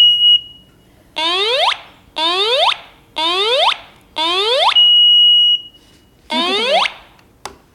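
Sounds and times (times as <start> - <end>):
smoke alarm warbling when its test cord is pulled: 1.2 - 5.7, 6.3 - 7.2.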